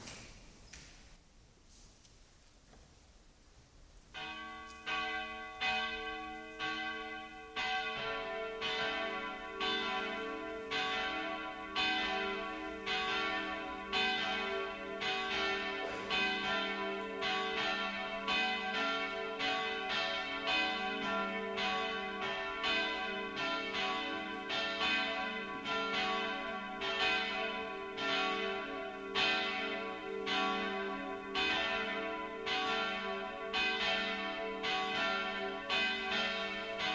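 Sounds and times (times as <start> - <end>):
church bells ringing together for mass: 4.1 - 36.9.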